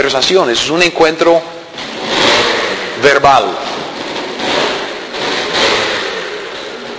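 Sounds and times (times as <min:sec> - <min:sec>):
speech: 0:00.0 - 0:01.6, 0:03.0 - 0:03.8
loud broad hissy mechanical roar: 0:01.6 - 0:06.9.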